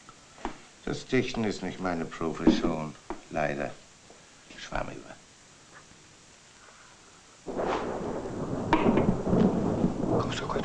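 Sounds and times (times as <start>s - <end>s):
speech: 0.9s - 3.8s, 4.6s - 5.2s
loud thunder clap rolling and rumbling in a thunderstorm: 7.5s - 10.6s.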